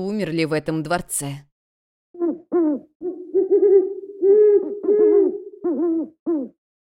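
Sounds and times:
speech: 0:00.0 - 0:01.5
owls hooting in the distance near a palace: 0:02.2 - 0:06.6.

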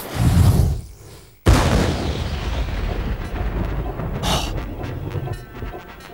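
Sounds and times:
regiment's gunfire volley: 0:01.5 - 0:06.1.

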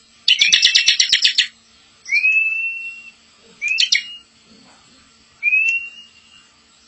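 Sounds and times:
Bar-winged prinia upslurred whistles: 0:00.3 - 0:04.3, 0:05.4 - 0:06.6.

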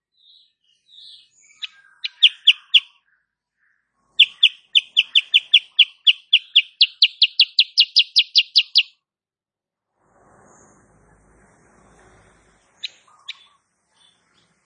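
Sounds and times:
female sooty-headed bulbul chirping: 0:00.0 - 0:09.0, 0:10.6 - 0:14.6
low rumbling noise: 0:09.9 - 0:14.6.

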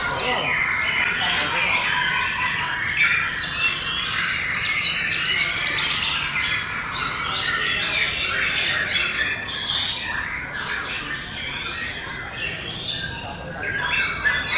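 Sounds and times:
White-rumped shama singing in forest: 0:00.0 - 0:14.5.

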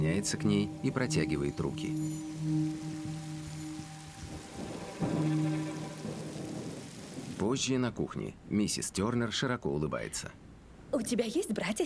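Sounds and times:
speech: 0:00.0 - 0:02.6, 0:07.5 - 0:11.8
low steady tones: 0:00.0 - 0:07.4
heavy rain pouring outside a doorway: 0:00.0 - 0:07.8.

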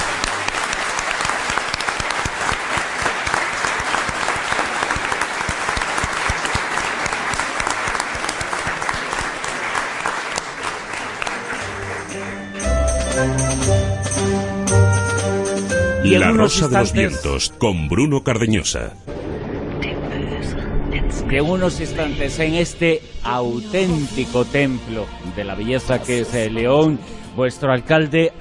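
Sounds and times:
live crowd applause in León Spain: 0:00.0 - 0:12.8
music: 0:09.7 - 0:28.3
speech: 0:16.1 - 0:19.1, 0:21.3 - 0:28.3.

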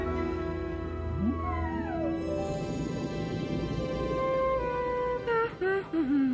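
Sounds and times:
low steady drone: 0:00.0 - 0:06.3
group of whales calling: 0:00.2 - 0:06.2.

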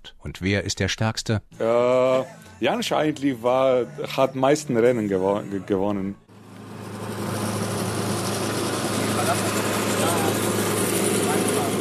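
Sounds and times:
speech: 0:00.2 - 0:06.2
lawn mower engine mowing a football pitch in Maribor Slovenia: 0:06.3 - 0:11.7.

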